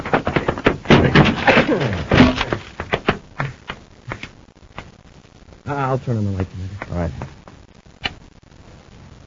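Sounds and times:
door being forced open with heavy thumps and bangs: 0.0s - 3.5s
creaking and rattling of a door: 0.0s - 4.3s
speech: 5.9s - 7.4s.

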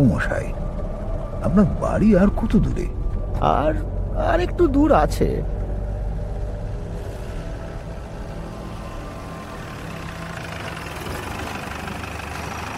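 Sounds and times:
speech: 0.0s - 0.6s, 1.4s - 5.6s
car engine running on a road past Jadavpur near Kolkata: 0.0s - 12.7s.

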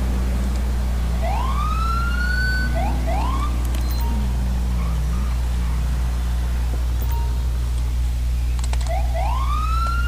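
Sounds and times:
low rumble of engine and road noise in a driving video game: 0.0s - 10.0s
police Camaro siren chirps in a driving video game: 1.1s - 7.5s, 8.8s - 10.0s.

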